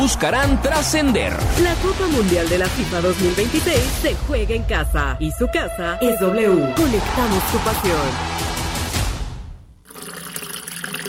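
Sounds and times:
speech: 0.0 - 8.4
water rushing from a faucet: 9.8 - 11.0.

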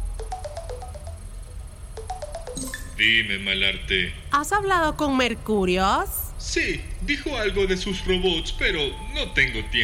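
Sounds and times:
phone ringing with a short melodic ringtone on an unanswered call: 0.0 - 3.1
speech: 3.0 - 9.8.

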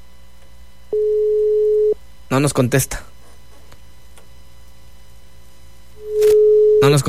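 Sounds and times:
ringback tone of an unanswered phone call: 0.9 - 2.0, 6.0 - 6.9.

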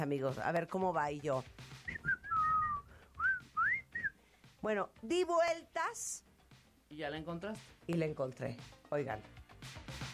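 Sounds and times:
speech: 0.0 - 1.6, 4.6 - 6.3, 6.9 - 9.4
person whistling a song tune: 1.8 - 4.2.

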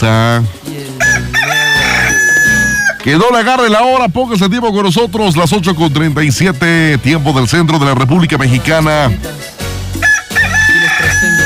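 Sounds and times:
speech: 0.0 - 0.8, 3.1 - 9.5
rooster crowing: 1.0 - 3.0, 10.0 - 11.4.

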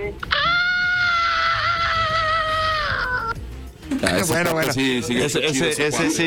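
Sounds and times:
loud high heavy-metal style scream: 0.3 - 3.3
speech: 4.0 - 6.2.

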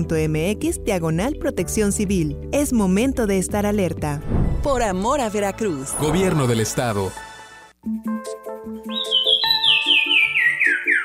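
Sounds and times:
speech: 0.0 - 7.3
Sumichrast's wren singing clear whistled notes: 8.8 - 11.0.

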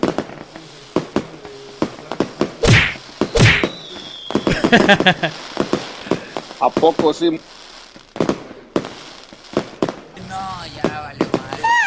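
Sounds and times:
firecrackers popping and cracking: 0.0 - 11.8
louder booming firecracker blasts: 2.6 - 5.2
laughter: 4.5 - 5.4
speech: 4.7 - 5.5, 6.6 - 7.6.

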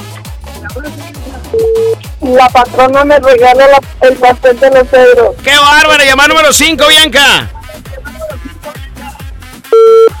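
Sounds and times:
rhythmic music with a thumping beat: 0.0 - 10.1
speech: 0.6 - 7.6
telephone busy signal after a caller hangs up: 9.8 - 10.1.

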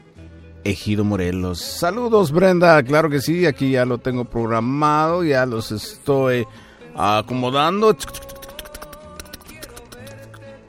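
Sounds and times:
music: 0.0 - 10.6
speech: 0.6 - 8.3
computer keyboard typing: 8.0 - 10.4.

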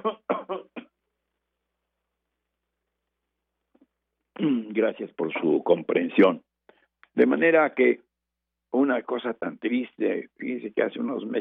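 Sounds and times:
person coughing: 0.0 - 1.0
speech: 4.4 - 6.5, 7.2 - 8.0, 8.8 - 11.3.

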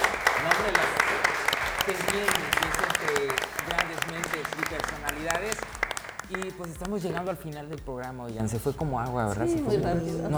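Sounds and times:
audience applause: 0.0 - 7.0
speech: 1.9 - 3.5, 4.4 - 10.3.

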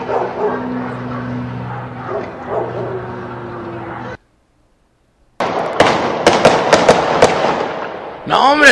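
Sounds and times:
barking or honking: 0.0 - 4.2
loud sharp gunshots from two different guns: 5.4 - 8.7.

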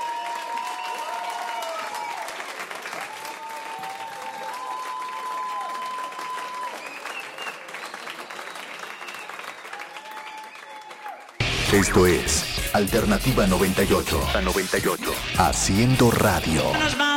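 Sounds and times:
crowd applauding: 0.0 - 12.5
speech: 11.7 - 17.1.

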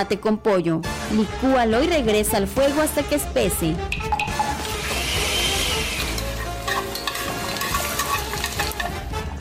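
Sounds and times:
speech: 0.0 - 4.0
beef steaks frying in hot oil in a pan: 4.5 - 8.7
stirring clicks and scrapes: 5.6 - 9.1.

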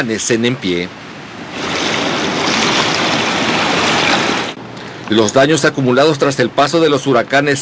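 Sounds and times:
speech: 0.0 - 1.6, 5.1 - 7.6
surf breaking on the shore: 0.1 - 5.3.

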